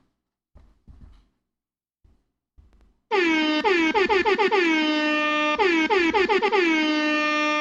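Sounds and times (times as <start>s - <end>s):
soft knocks: 0.6s - 1.4s
air horn blasts: 3.1s - 7.5s.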